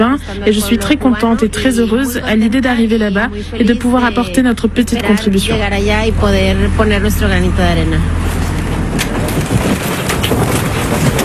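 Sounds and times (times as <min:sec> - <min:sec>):
speech: 0:00.0 - 0:08.4
low hum aboard a stationary boat: 0:00.0 - 0:11.2
wind and water washing at open sea aboard a stationary boat: 0:05.5 - 0:11.2.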